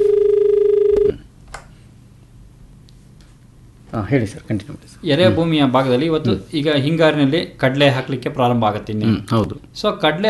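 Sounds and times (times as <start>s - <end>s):
telephone line tone as a listener's call comes in: 0.0s - 1.2s
speech: 4.0s - 10.2s.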